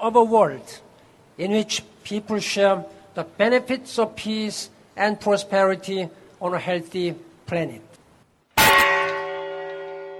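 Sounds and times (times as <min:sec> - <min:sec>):
speech: 0:00.0 - 0:07.9
large ceremonial peace bell struck and ringing: 0:08.6 - 0:10.1.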